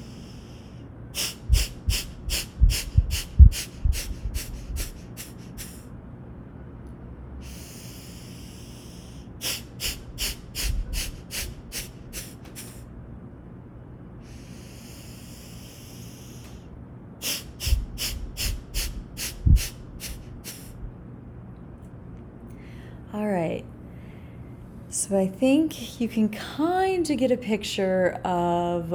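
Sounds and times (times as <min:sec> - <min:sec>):
rapid rhythmic forceful breaths pushed out through the nose: 0:00.0 - 0:05.9, 0:07.4 - 0:12.9, 0:14.2 - 0:20.9
whooshing inhales: 0:00.0 - 0:05.9, 0:07.4 - 0:12.9, 0:14.2 - 0:20.9
speech: 0:25.1 - 0:28.9.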